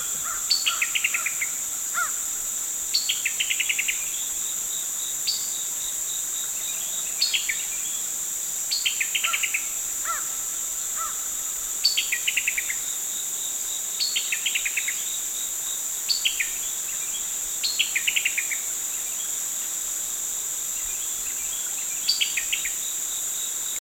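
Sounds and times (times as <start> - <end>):
Summer Tanager Piranga rubra: 0.0 - 23.7.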